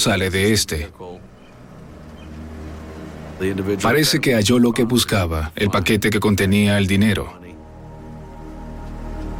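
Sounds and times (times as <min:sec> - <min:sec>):
speech: 0:00.0 - 0:01.2, 0:03.4 - 0:07.4
car engine approaching and idling: 0:00.0 - 0:05.3.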